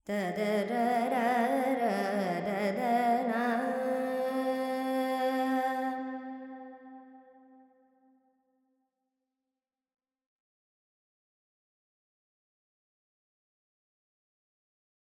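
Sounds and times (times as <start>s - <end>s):
Carnatic woman singing alap in Lydian with reverb: 0.0s - 6.4s.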